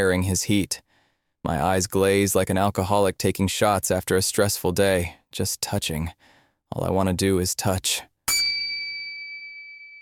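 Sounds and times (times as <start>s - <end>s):
speech: 0.0s - 0.8s, 1.4s - 8.1s
kitchen timer chime: 8.3s - 10.0s.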